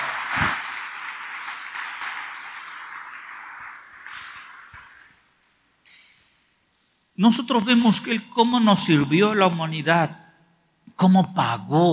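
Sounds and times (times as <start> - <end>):
crowd applauding: 0.0 - 5.2
speech: 7.2 - 10.2, 11.0 - 11.9.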